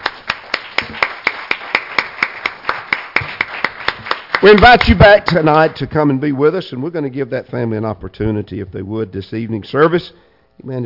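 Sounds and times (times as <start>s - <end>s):
audience clapping in unison: 0.0s - 5.9s
speech: 4.4s - 10.8s.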